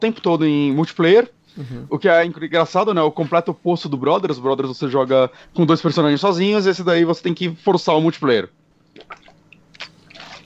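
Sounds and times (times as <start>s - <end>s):
speech: 0.0s - 9.2s
person sipping and swallowing water: 8.9s - 10.4s.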